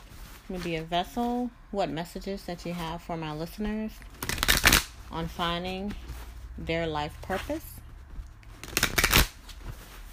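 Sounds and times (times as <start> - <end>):
faint soft rustle of cards: 0.0 - 1.5, 5.1 - 8.7, 9.3 - 10.1
speech: 0.5 - 4.2, 5.1 - 7.7
deck of Archangel oracle cards shuffled by hand: 4.0 - 6.5, 7.4 - 10.1.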